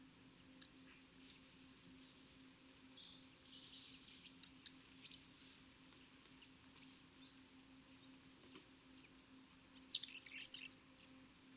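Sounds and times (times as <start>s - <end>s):
steady low hum: 0.0s - 11.5s
European robin Erithacus rubecula singing high whistle and twittering: 0.4s - 0.9s, 2.0s - 5.3s, 6.0s - 11.2s.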